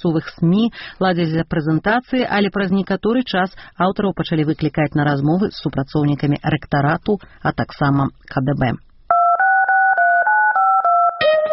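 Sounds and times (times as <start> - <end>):
speech: 0.0 - 8.8
touch-tone telephone keys dialling a number: 9.1 - 11.5.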